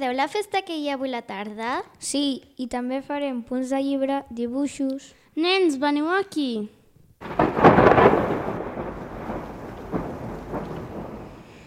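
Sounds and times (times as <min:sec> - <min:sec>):
speech: 0:00.0 - 0:07.4
loud roll of thunder with softer rumbles: 0:07.2 - 0:11.6
rain falling in a steady broadband hiss: 0:07.2 - 0:11.6.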